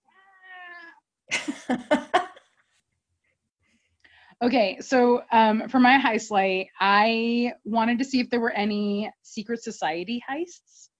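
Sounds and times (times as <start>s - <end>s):
cat meowing: 0.0s - 0.9s
laughter: 1.3s - 2.4s
speech: 1.7s - 2.2s, 4.4s - 10.9s.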